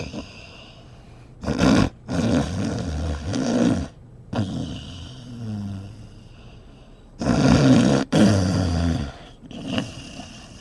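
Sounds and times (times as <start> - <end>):
old man snoring loudly with rasping snores: 1.4 - 6.1, 7.2 - 10.5.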